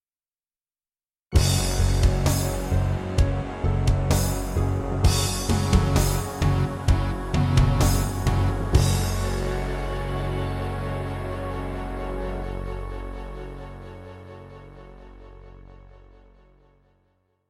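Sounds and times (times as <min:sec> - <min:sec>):
synthesizer introduction: 0:01.3 - 0:17.3.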